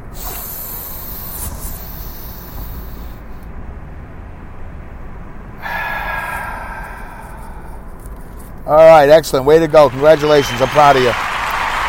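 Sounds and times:
long hissing deep breath drawn in and strong airy exhale: 0.0s - 3.5s, 5.6s - 8.5s
speech: 8.7s - 11.3s.

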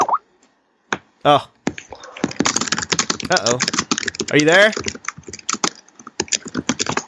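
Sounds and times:
speech: 1.2s - 1.5s, 3.3s - 5.0s
typing on a computer keyboard: 1.7s - 7.0s.

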